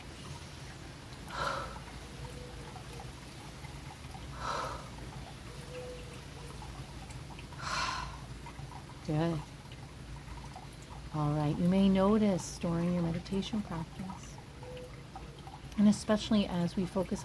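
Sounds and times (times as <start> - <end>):
faint hum: 0.0 - 17.2
slow deep breaths drawn in and let out: 1.3 - 1.9, 4.4 - 5.0, 7.6 - 8.2
speech: 9.1 - 9.5, 11.1 - 14.3, 15.8 - 17.2.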